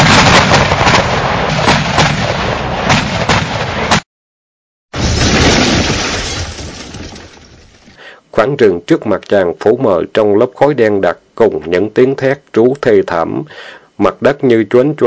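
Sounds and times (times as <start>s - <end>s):
pack of explosives going off at a forest's edge: 0.0s - 4.0s, 5.0s - 8.0s
speech: 8.5s - 15.0s.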